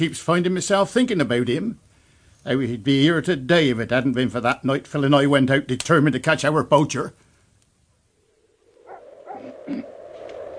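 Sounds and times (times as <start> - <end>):
speech: 0.0 - 1.8, 2.4 - 7.2
dog barking: 8.8 - 9.7.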